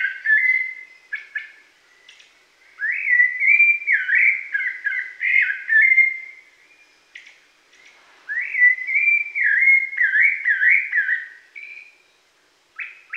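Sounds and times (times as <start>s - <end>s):
Rufous-bellied thrush singing mellow whistled phrases in the Pantanal, Brazil: 0.0s - 1.6s, 2.7s - 6.5s, 8.3s - 12.0s.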